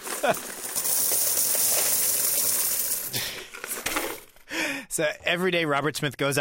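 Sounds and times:
many coins rattling in a paper box: 0:00.0 - 0:03.4
speech: 0:00.2 - 0:00.7, 0:05.0 - 0:06.3.

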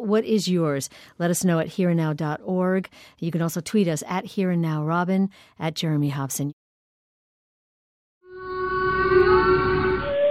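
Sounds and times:
speech: 0:00.0 - 0:06.6
humpback whale long tonal moan: 0:08.5 - 0:10.3.

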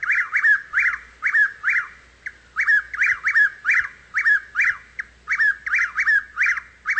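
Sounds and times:
Chuck-will's-widow singing on a hot night: 0:00.0 - 0:06.9.

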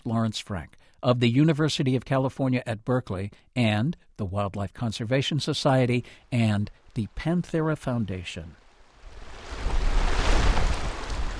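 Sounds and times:
speech: 0:00.0 - 0:08.6
river water flowing: 0:08.6 - 0:11.3.

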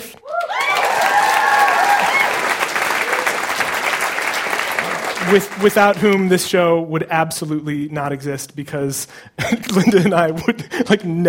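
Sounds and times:
audience whoops and cheers: 0:00.2 - 0:03.5
live show audience applause: 0:00.2 - 0:06.3
speech: 0:05.3 - 0:11.2
laughter: 0:09.4 - 0:11.2.

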